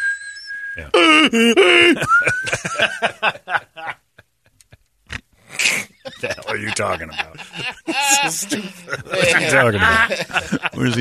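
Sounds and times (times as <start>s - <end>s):
voice imitating a hearing aid feedback whistle: 0.0s - 1.3s
speech: 0.8s - 3.6s, 6.5s - 10.9s
laughter: 1.0s - 4.8s, 5.6s - 10.9s.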